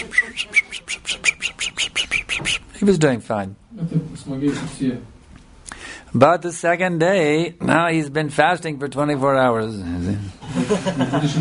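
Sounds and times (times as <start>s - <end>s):
voice imitating a small bird's chirping: 0.0s - 2.7s
speech: 2.8s - 5.2s, 6.1s - 11.3s
laughter: 10.4s - 11.3s.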